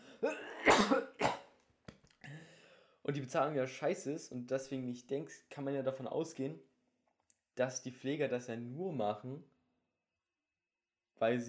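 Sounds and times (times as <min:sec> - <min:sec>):
person coughing in harsh bursts: 0:00.0 - 0:01.5
short breath: 0:02.2 - 0:03.0
speech: 0:03.1 - 0:06.7, 0:07.6 - 0:09.5, 0:11.2 - 0:11.4.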